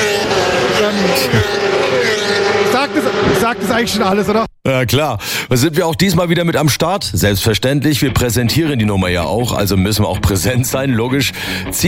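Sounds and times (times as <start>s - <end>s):
motorcycles roaring past: 0.0s - 4.3s
speech: 3.0s - 11.8s.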